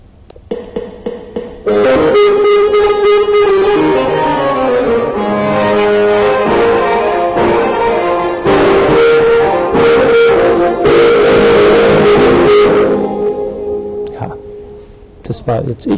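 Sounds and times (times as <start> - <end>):
speech: 1.7 - 2.6, 15.5 - 15.9
orchestral music played on electronic instruments: 1.7 - 14.7.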